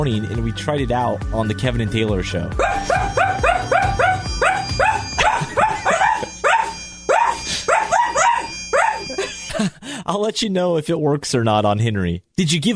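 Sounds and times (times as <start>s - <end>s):
speech: 0.0s - 3.8s, 10.1s - 12.7s
dog barking rapidly: 2.6s - 9.1s.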